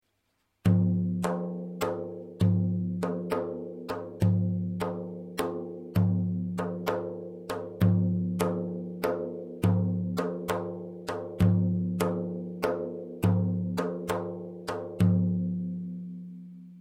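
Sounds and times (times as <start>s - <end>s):
tar lute: 0.6s - 16.5s.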